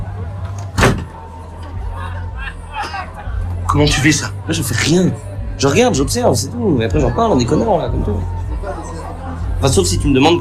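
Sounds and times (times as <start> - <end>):
heavy door banging shut into a man's face: 0.7 - 1.2
speech: 3.8 - 8.8, 9.6 - 10.3.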